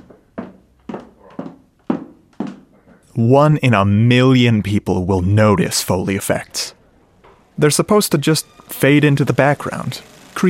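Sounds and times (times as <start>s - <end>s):
high heels hurrying across wooden floor: 0.0s - 3.0s
speech: 3.2s - 6.8s, 7.6s - 10.4s.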